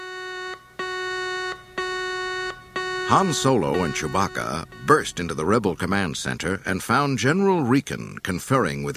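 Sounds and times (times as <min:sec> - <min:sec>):
harsh buzzing electronic warning alarm in underground corridors: 0:00.0 - 0:06.0
speech: 0:03.1 - 0:08.9.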